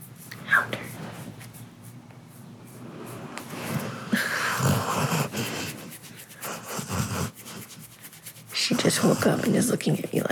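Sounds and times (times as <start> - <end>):
dog snoring while awake: 3.7 - 7.6
speech: 9.0 - 10.3.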